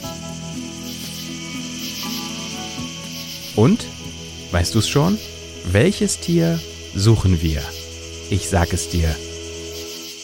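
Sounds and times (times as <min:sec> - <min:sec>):
grasshopper stridulating: 0:00.0 - 0:10.2
speech: 0:03.6 - 0:03.9, 0:04.5 - 0:09.3.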